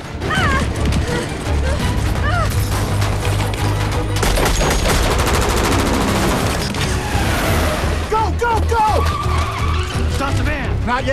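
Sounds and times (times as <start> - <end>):
van engine roaring while reversing at speed: 0.0 - 11.1
van tyres screeching while reversing at speed: 0.0 - 11.1
gunfire bursts and sharp cracks as van occupants trade fire with troops: 4.2 - 6.8.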